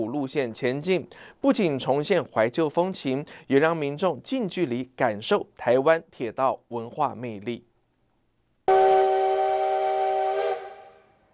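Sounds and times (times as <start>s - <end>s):
speech: 0.0s - 7.7s
CT273 steam locomotive whistle at Yuli railway station in Hualien, Taiwan: 8.7s - 11.3s.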